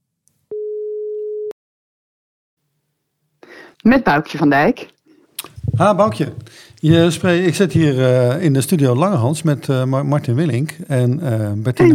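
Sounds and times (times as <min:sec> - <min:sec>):
telephone ringing tone while placing a call: 0:00.5 - 0:01.5
speech: 0:03.8 - 0:05.0, 0:05.8 - 0:11.9.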